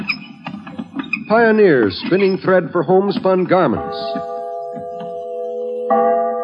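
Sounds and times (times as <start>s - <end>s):
speech: 1.3s - 4.3s
large bell ringing: 3.2s - 6.4s.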